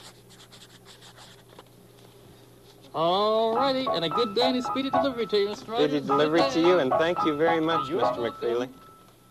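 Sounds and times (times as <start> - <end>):
pencil scratching on paper signing a delivery form: 0.0 - 1.6
speech: 2.9 - 8.8.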